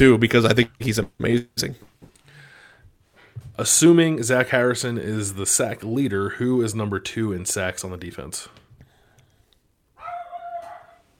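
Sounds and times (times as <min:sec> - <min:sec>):
speech: 0:00.0 - 0:01.9, 0:03.6 - 0:08.6
dog barking while running across a living room: 0:10.0 - 0:11.0.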